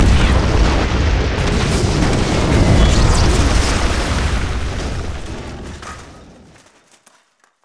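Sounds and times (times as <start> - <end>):
bomb explosion: 0.0 - 6.6.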